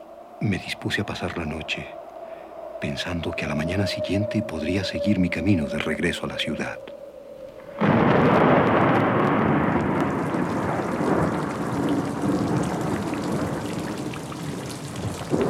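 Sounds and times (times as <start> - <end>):
speech: 0.4 - 2.0, 2.8 - 7.0
heavy rain pouring down: 7.6 - 15.4
deep rumbling thunder: 7.7 - 15.4.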